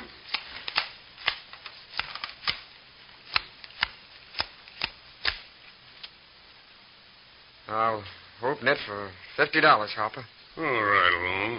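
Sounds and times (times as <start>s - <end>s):
playing cards shuffled and dealt for a poker game: 0.0s - 2.7s, 3.3s - 6.2s
speech: 7.7s - 11.5s.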